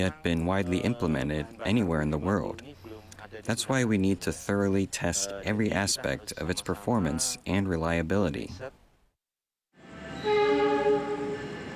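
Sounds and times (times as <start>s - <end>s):
speech: 0.0s - 8.8s
train horn blast: 10.0s - 11.7s.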